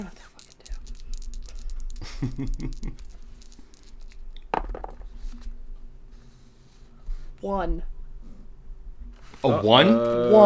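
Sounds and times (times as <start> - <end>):
speech: 2.2 - 3.1, 7.4 - 7.9, 9.4 - 10.4
dice rolling across a hard tabletop during a tabletop role-playing game: 3.8 - 5.0.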